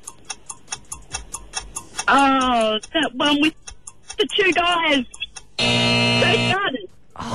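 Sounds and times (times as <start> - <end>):
quiz countdown timer ticking: 0.0 - 7.0
people talking: 2.1 - 3.6, 4.2 - 5.3, 6.0 - 7.3
loud sustained buzzer: 5.6 - 6.7.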